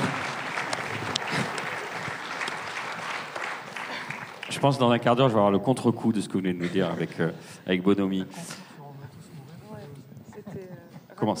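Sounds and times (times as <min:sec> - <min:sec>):
audience applause: 0:00.0 - 0:05.4
speech: 0:04.5 - 0:08.6.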